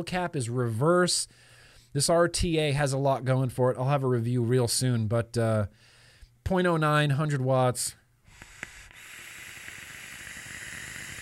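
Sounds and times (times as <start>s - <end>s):
speech: 0.0s - 8.0s
vape atomizer coil crackling while firing: 8.3s - 11.2s.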